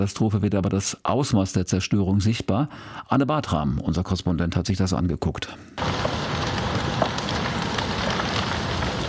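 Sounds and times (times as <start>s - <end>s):
speech: 0.0s - 6.4s
large wind-driven fire crackling: 5.8s - 9.0s.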